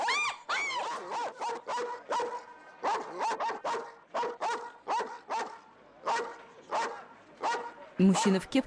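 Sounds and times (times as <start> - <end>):
large shepherd dog barking: 0.7 - 8.3
speech: 8.0 - 8.6.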